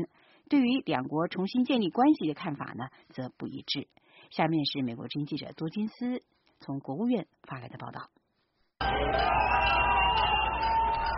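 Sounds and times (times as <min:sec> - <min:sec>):
speech: 0:00.5 - 0:08.2, 0:08.8 - 0:10.2
large outdoor crowd cheering and shouting: 0:08.8 - 0:11.1
rhythmic chanted calls: 0:08.8 - 0:11.1.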